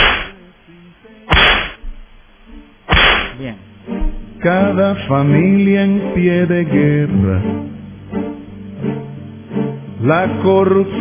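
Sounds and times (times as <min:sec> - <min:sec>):
whip lashes cracking: 0:00.0 - 0:00.3, 0:01.3 - 0:01.8, 0:02.9 - 0:03.4
speech: 0:03.4 - 0:03.7, 0:04.4 - 0:07.7, 0:10.0 - 0:11.0.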